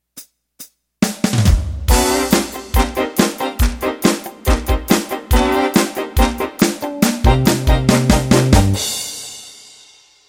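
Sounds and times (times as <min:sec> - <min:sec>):
country boogie music intro: 0:01.9 - 0:09.0.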